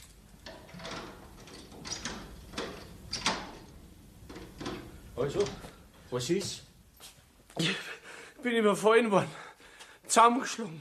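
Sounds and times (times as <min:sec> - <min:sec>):
soft hiss: 0:00.0 - 0:10.7
door being unlatched and opened at night: 0:00.4 - 0:05.7
speech: 0:05.2 - 0:06.7, 0:07.6 - 0:09.4, 0:10.1 - 0:10.7.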